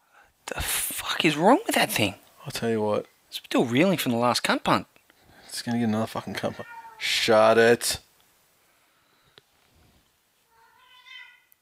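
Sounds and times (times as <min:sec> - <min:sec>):
speech: 0:00.5 - 0:04.9, 0:05.5 - 0:08.0
cat meowing: 0:06.6 - 0:07.1, 0:10.5 - 0:11.5.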